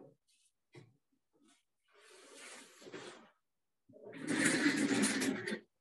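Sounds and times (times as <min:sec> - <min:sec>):
chair being dragged and shuffled, scraping: 0:02.0 - 0:03.3, 0:04.1 - 0:05.7.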